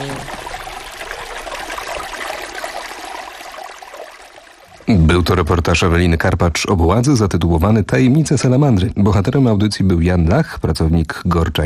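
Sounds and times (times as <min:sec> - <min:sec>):
mountain stream trickling and rushing in Gorce National Park, Poland: 0:00.0 - 0:08.8
speech: 0:04.9 - 0:11.6.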